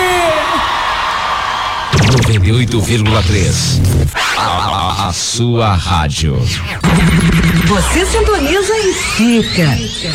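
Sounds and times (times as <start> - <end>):
large crowd roaring and whooping: 0.0 - 2.3, 6.9 - 10.1
speech: 2.5 - 10.1.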